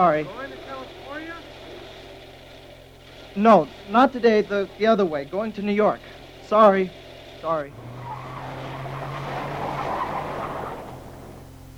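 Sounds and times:
speech: 0:00.0 - 0:00.6, 0:03.4 - 0:07.9
car engine humming: 0:00.0 - 0:11.7
tires scraping and skidding across the road in a swerve: 0:07.6 - 0:11.7.

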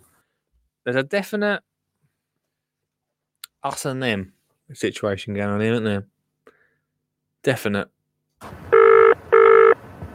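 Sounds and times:
speech: 0:00.8 - 0:01.7, 0:03.6 - 0:06.1, 0:07.4 - 0:08.7
telephone ringing with bright electronic tones: 0:08.7 - 0:09.8.

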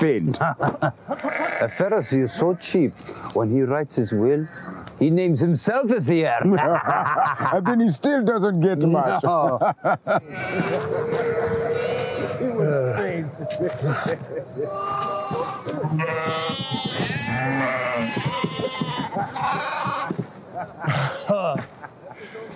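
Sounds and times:
speech: 0:00.0 - 0:11.4, 0:13.5 - 0:19.9
laughter: 0:00.2 - 0:01.6, 0:06.3 - 0:08.0, 0:08.8 - 0:17.1, 0:18.2 - 0:22.5
sheep bleating: 0:01.1 - 0:01.9, 0:10.3 - 0:12.6, 0:14.7 - 0:20.2.

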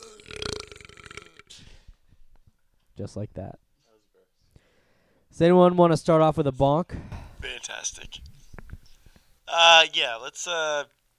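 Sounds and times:
long loud rumbling burp: 0:00.0 - 0:01.5
speech: 0:03.0 - 0:03.6, 0:05.4 - 0:07.2, 0:09.6 - 0:11.0.

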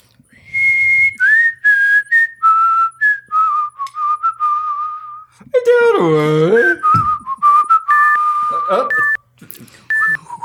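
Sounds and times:
person whistling a quick tune: 0:00.4 - 0:05.3, 0:06.6 - 0:09.2, 0:09.9 - 0:10.4
speech: 0:06.0 - 0:06.6.

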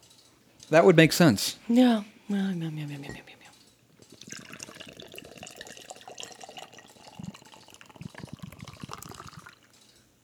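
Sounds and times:
speech: 0:00.7 - 0:03.4
cream ale pouring into a glass: 0:04.1 - 0:09.8.

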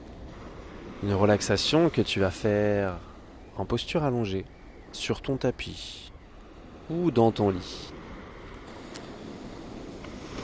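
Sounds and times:
ocean waves on the shore in Kerala India: 0:00.0 - 0:10.4
speech: 0:01.0 - 0:06.1, 0:06.9 - 0:08.0.

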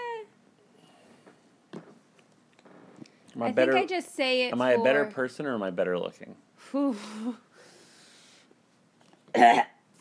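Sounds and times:
faint breathing: 0:00.6 - 0:01.5, 0:06.6 - 0:08.6
speech: 0:03.4 - 0:07.5, 0:09.4 - 0:09.7
person coughing to clear something in the throat: 0:09.3 - 0:09.8.

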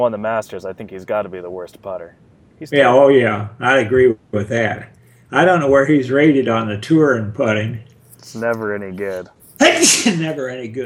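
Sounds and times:
speech: 0:00.0 - 0:10.8
loud sneeze caused by a slight allergy: 0:09.6 - 0:10.4.

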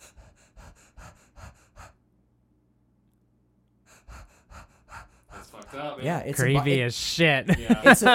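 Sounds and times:
human voice imitating Cheyne-Stokes breathing before death: 0:00.0 - 0:02.0, 0:03.8 - 0:05.8
laughter: 0:05.4 - 0:08.1
speech: 0:05.7 - 0:08.1.

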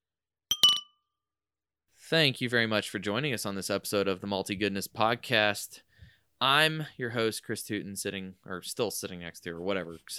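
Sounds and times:
beer glasses clinking in a toast: 0:00.5 - 0:00.9
speech: 0:02.1 - 0:10.1.

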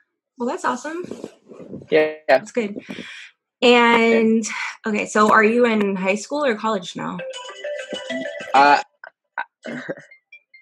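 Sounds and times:
speech: 0:00.4 - 0:08.9, 0:09.6 - 0:10.1
mobile phone ringtone with bright electronic melody: 0:07.2 - 0:08.7.

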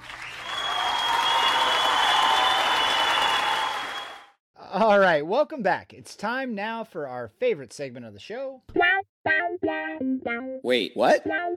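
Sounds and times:
large crowd applauding in an ovation: 0:00.0 - 0:04.4
speech: 0:04.8 - 0:11.5.

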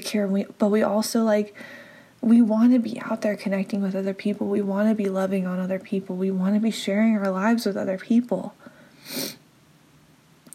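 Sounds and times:
speech: 0:00.0 - 0:09.4
short breathy sniff through the nose: 0:09.0 - 0:09.4.

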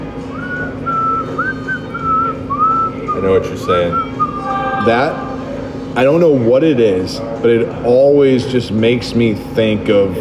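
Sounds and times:
person whistling a slow eerie film melody: 0:00.3 - 0:05.6
speech: 0:03.2 - 0:04.2, 0:04.8 - 0:05.3, 0:06.0 - 0:10.1.

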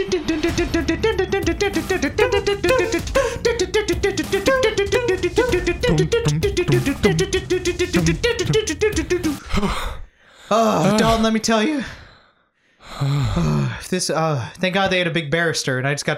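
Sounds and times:
fast-paced driving music with quick beat and layered melodic notes: 0:00.0 - 0:09.4
speech: 0:10.5 - 0:12.0, 0:13.0 - 0:16.1.

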